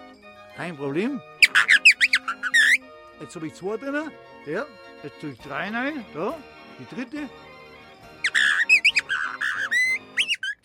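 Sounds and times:
speech: 0:00.6 - 0:01.7, 0:03.2 - 0:07.5
bird-call whistle held against the palate, trilling: 0:01.4 - 0:02.8, 0:08.2 - 0:10.6.

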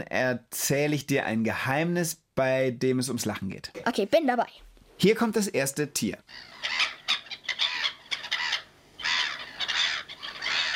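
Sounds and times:
speech: 0:00.0 - 0:06.8
black-headed gulls calling with harsh raucous cries: 0:06.3 - 0:10.7.

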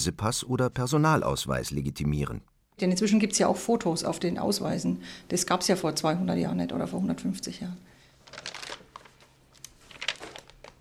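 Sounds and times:
speech: 0:00.0 - 0:07.9
heavy pages of an old birth register book turning: 0:08.2 - 0:10.7.

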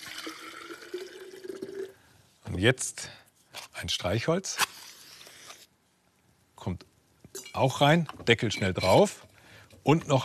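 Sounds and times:
warm water poured into an opened lidded jar: 0:00.0 - 0:02.0
speech: 0:02.6 - 0:03.2, 0:03.8 - 0:04.7, 0:06.6 - 0:06.9, 0:07.6 - 0:10.2.

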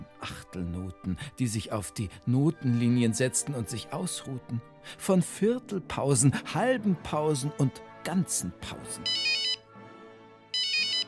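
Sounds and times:
speech: 0:00.2 - 0:09.4
mobile phone ringtone with bright electronic bursts: 0:09.0 - 0:09.7, 0:10.5 - 0:11.0.

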